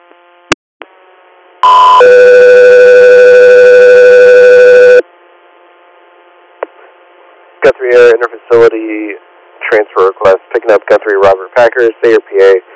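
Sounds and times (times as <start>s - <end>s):
harsh electronic two-part dispatch radio alert tone for an interfacility transfer request: 1.6s - 5.0s
faint radio static: 4.5s - 12.7s
speech: 7.7s - 12.7s.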